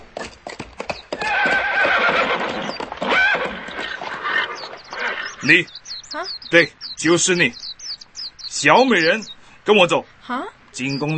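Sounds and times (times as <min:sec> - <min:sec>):
horse hooves clip-clopping as a knight rides past outside a palace: 0:00.0 - 0:08.4
horse whinnying as a knight rides it past outside a palace: 0:01.1 - 0:05.7
speech: 0:05.4 - 0:07.6, 0:08.6 - 0:11.1.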